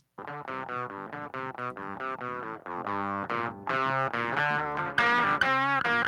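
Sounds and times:
electric guitar through an amplifier with warm slightly driven tone: 0.2 - 6.0.

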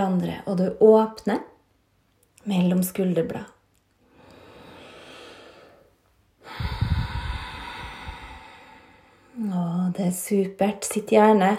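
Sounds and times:
speech: 0.0 - 1.5, 2.4 - 3.6, 9.4 - 11.5
ujjayi yogic breathing through a constricted throat: 4.0 - 9.4.

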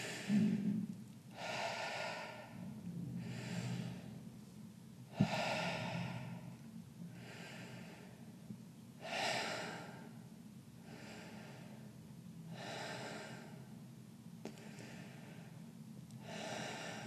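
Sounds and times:
deep rhythmic breathing: 0.0 - 17.0
low hum: 0.0 - 17.0.

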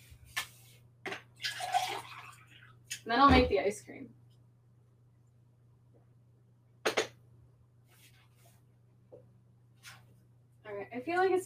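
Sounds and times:
water poured into a glass: 1.4 - 2.8
speech: 3.1 - 4.2, 11.0 - 11.4.

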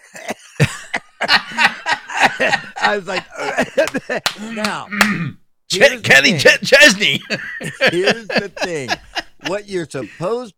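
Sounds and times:
laughter: 0.0 - 4.8, 6.8 - 10.5
harsh coughing: 0.0 - 5.5
speech: 2.4 - 10.5.

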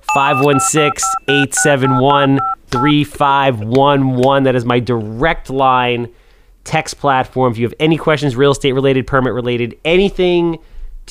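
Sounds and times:
electronic telephone keypad tones: 0.1 - 3.0
speech: 0.2 - 11.0.

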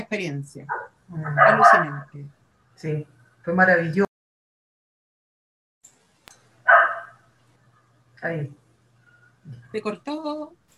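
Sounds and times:
low steady hum: 0.0 - 4.1, 5.9 - 10.7
speech: 0.1 - 4.1, 8.2 - 8.6, 9.5 - 10.6
neighbourhood dog barking: 0.7 - 2.1, 6.6 - 7.3.

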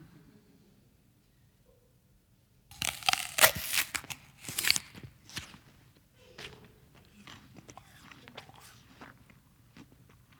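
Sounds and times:
apple chewing crunches: 2.7 - 10.3
crisp crunch of biting into an apple: 2.7 - 10.3.

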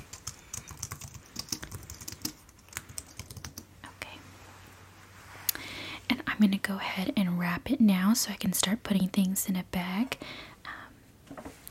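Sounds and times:
typing on a computer keyboard: 0.0 - 3.6
speech: 6.4 - 10.5.

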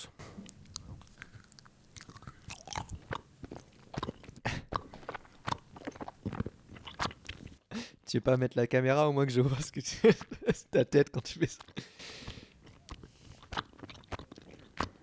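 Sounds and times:
someone biting into and chewing raw firm food: 0.4 - 7.7, 11.5 - 15.0
speech: 8.1 - 11.9
laughter: 9.9 - 11.4.

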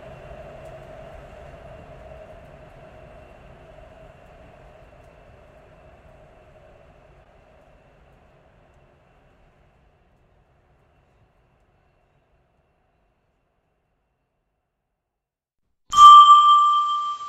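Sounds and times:
bright ringing chime: 15.9 - 17.2
subway train rumbling into a station: 15.9 - 17.2.

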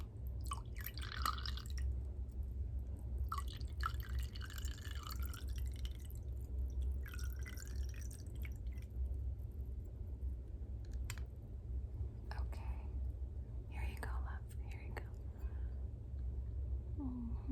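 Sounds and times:
low hum: 0.0 - 17.5
Riesling wine poured into a glass: 0.4 - 2.0, 3.2 - 8.9.

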